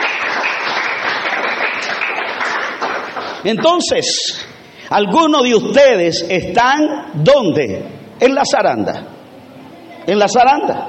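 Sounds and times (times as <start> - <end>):
audience applauding: 0.0 - 3.9
speech: 3.4 - 9.2, 10.1 - 10.8.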